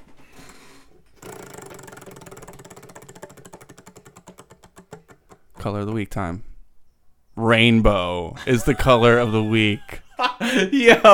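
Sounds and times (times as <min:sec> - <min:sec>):
prize wheel spinning sound effect: 0:01.2 - 0:05.9
speech: 0:05.6 - 0:06.5, 0:07.4 - 0:11.1.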